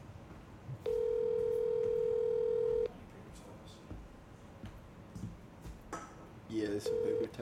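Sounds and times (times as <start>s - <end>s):
steady electronic hum: 0.8s - 2.9s
telephone ringback tone through a speakerphone: 0.8s - 2.9s, 6.9s - 7.3s
speech: 6.8s - 7.4s.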